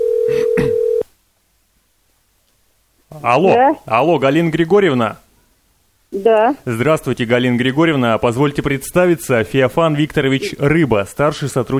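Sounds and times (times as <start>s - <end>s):
telephone ringback tone: 0.0s - 1.0s
speech: 3.2s - 5.2s, 6.1s - 11.7s.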